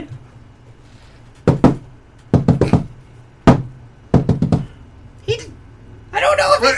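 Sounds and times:
loud knocking on a door: 1.4 - 4.8.

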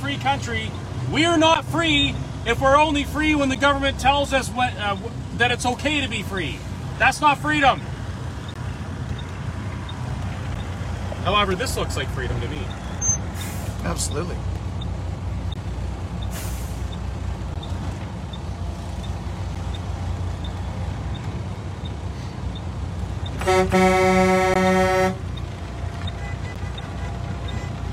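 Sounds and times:
idling traffic and engine noise from a convoy of cars in town: 0.0 - 27.9
speech: 0.1 - 7.9, 11.3 - 12.8, 13.8 - 14.5, 23.5 - 24.2
vehicle horn blaring in a car convoy: 23.4 - 25.3.

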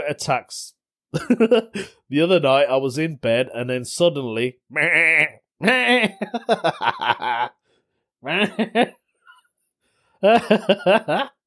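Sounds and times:
speech: 0.1 - 7.6, 8.2 - 9.0, 10.2 - 11.4
human voice imitating a goat's bleat: 4.7 - 6.1
laughter: 5.6 - 7.5, 8.3 - 9.0, 10.2 - 11.4.

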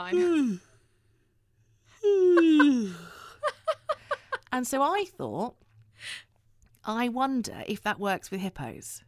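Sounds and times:
speech: 0.0 - 0.7, 4.6 - 9.0
person yawning: 0.1 - 0.8, 2.0 - 3.2.

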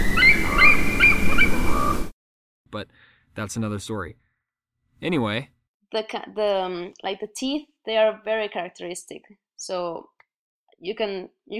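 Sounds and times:
eagle giving high-pitched chittering calls: 0.0 - 2.0
speech: 2.8 - 4.2, 5.0 - 10.1, 10.8 - 11.5.

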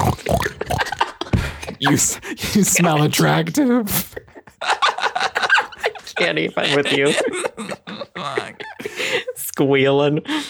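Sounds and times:
person imitating pig oinking and sniffing: 0.0 - 1.0, 2.8 - 4.3
laughter: 0.5 - 9.4
speech: 1.8 - 4.3, 6.2 - 7.4, 9.6 - 10.4.

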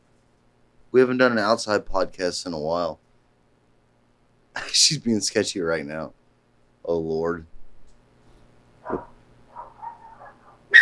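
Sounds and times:
speech: 0.9 - 3.0, 4.6 - 6.2, 6.8 - 7.6
dogs barking and yelping outdoors: 8.8 - 10.8.

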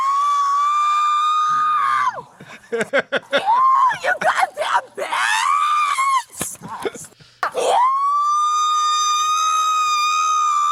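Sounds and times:
woman screaming while held to be searched: 0.0 - 2.2, 3.4 - 6.4, 7.4 - 10.6
laughter: 2.4 - 4.5
speech: 2.7 - 5.6.

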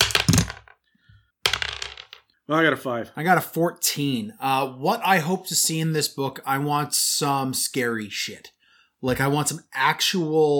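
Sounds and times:
dice tumbling across a hard tabletop: 0.0 - 0.8, 1.5 - 2.3
speech: 2.5 - 10.5.

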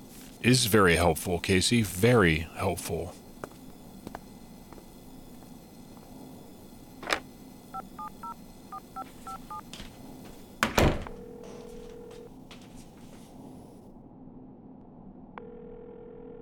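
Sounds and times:
faint hum: 0.0 - 16.4
speech: 0.4 - 3.2
dial tone beeps of a phone number being dialed: 7.7 - 9.7.

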